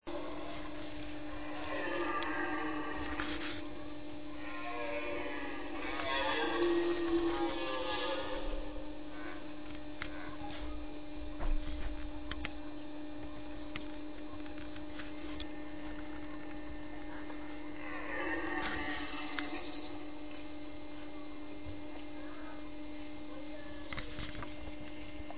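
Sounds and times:
red deer bellowing during the rut: 0.0 - 10.5, 17.0 - 20.4
constant hum: 0.0 - 25.3.

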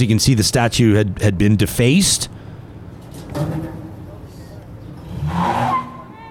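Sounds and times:
speech: 0.0 - 2.4
vehicle engine revving while tugging a defaced statue down at a rally: 3.4 - 6.1.

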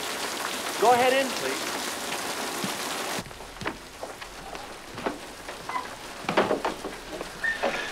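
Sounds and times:
heavy rain falling: 0.0 - 7.9
speech: 0.8 - 1.8.

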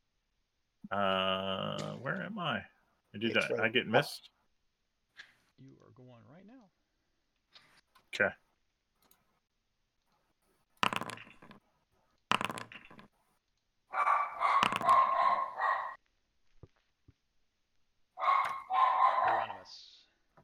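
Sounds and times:
speech: 0.9 - 4.4, 8.1 - 8.4
dog barking: 13.9 - 16.0, 18.2 - 19.7.

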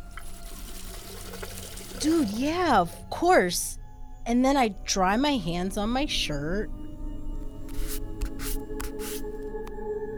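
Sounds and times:
tap water running over hands being rinsed: 0.0 - 2.9, 7.5 - 9.9
speech: 2.0 - 6.8.

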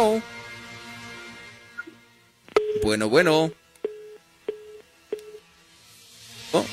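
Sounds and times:
dropped phone line tones: 2.6 - 2.9, 3.9 - 5.4
speech: 2.8 - 3.6, 6.5 - 6.7.

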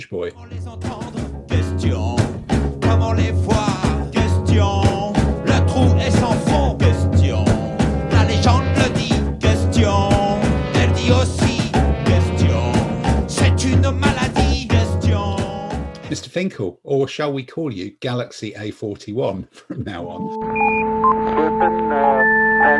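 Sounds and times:
speech: 0.0 - 2.2, 16.4 - 22.7
upbeat funky music with bassline and drums: 0.3 - 16.3, 19.8 - 22.7.

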